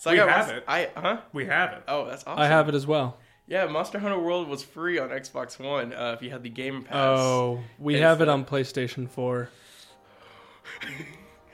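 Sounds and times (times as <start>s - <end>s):
speech: 0.0s - 9.6s, 10.7s - 11.2s
heavy breathing into a microphone: 9.5s - 10.7s.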